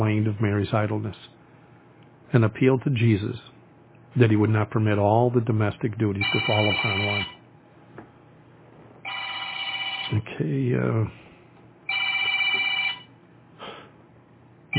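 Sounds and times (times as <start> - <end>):
speech: 0.1 - 1.4, 2.3 - 3.5, 4.1 - 7.4, 10.1 - 11.2
telephone trilling rings: 6.2 - 7.4, 9.0 - 10.2, 11.9 - 13.1.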